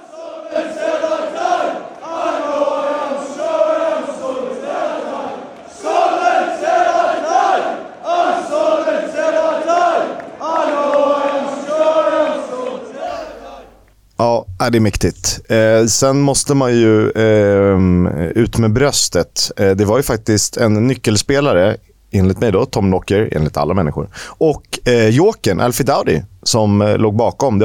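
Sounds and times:
large crowd of football supporters chanting in unison after a defeat: 0.0s - 13.8s
speech: 14.7s - 27.6s.

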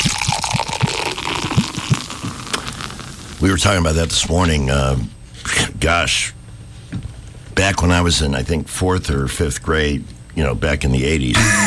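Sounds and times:
beer pouring into a pint glass: 0.0s - 2.9s
speech: 3.4s - 6.4s, 7.6s - 11.6s.

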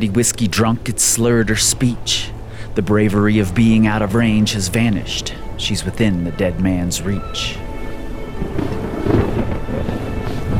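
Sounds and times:
speech: 0.0s - 7.6s
rain: 0.0s - 10.5s
wind: 0.0s - 10.5s
deep rolling thunder: 3.1s - 10.5s.

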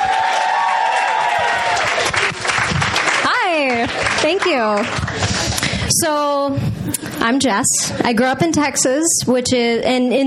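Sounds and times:
room full of people clapping and cheering: 0.0s - 5.9s
speech: 4.2s - 10.2s.

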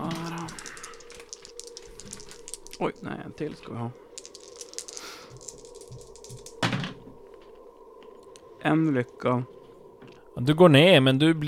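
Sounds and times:
dice rolled for a willpower check rattling across a hard surface: 0.0s - 6.9s
speech: 2.8s - 4.0s, 8.6s - 9.6s, 10.4s - 11.4s.

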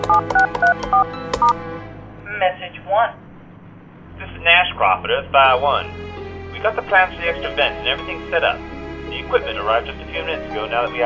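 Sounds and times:
touch-tone telephone keypad beeps entering a password: 0.1s - 1.6s
speech: 0.1s - 3.2s, 4.2s - 11.0s.

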